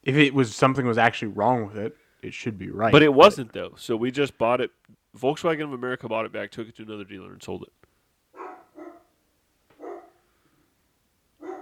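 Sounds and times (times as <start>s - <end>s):
speech: 0.0s - 7.8s
upset dog barking: 8.4s - 9.2s, 9.8s - 10.2s, 11.4s - 11.5s.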